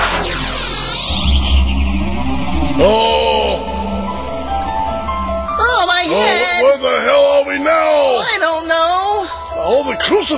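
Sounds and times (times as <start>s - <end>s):
sharp whooshing surge: 0.0s - 6.8s
bus engine roaring and speeding away: 0.0s - 7.1s
speech: 2.8s - 3.1s, 6.6s - 10.3s.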